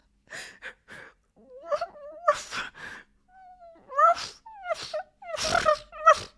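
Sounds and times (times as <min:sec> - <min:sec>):
person imitating dog high wavering whines: 0:01.4 - 0:02.7, 0:03.3 - 0:06.3
person imitating dog yelping barks: 0:03.8 - 0:06.3.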